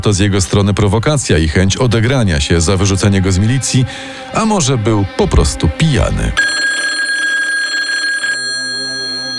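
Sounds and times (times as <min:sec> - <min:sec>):
speech: 0:00.0 - 0:06.6
telephone ringing: 0:06.4 - 0:09.3.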